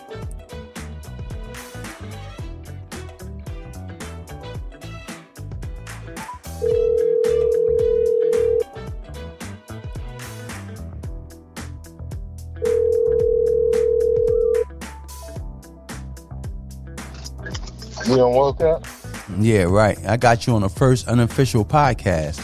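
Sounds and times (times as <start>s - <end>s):
telephone line ringing while a call is placed: 6.6s - 8.7s, 12.6s - 14.6s
speech: 18.1s - 22.4s.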